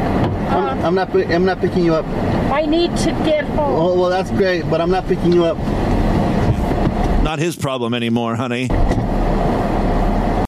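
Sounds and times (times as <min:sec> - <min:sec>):
car engine rumbling: 0:00.0 - 0:10.4
speech: 0:00.8 - 0:05.8, 0:07.3 - 0:09.1.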